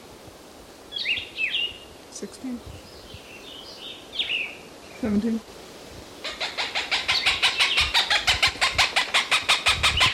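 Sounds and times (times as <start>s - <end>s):
speech: 2.2s - 2.9s, 5.0s - 5.6s
Cooper's hawk calling: 6.2s - 10.1s.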